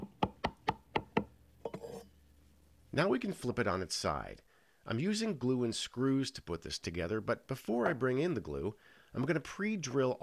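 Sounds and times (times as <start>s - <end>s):
hammer tapping a wooden shelf into place in a clamped wooden assembly: 0.0s - 1.3s
speech: 2.9s - 10.2s.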